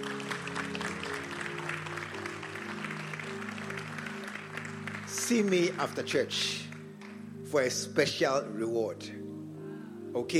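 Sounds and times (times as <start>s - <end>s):
crowd clapping: 0.0s - 7.2s
speech: 5.3s - 6.6s, 7.5s - 9.2s, 10.2s - 10.3s.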